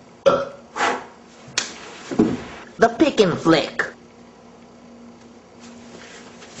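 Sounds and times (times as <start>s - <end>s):
loud burp: 0.2s - 0.6s
speech: 2.8s - 3.9s.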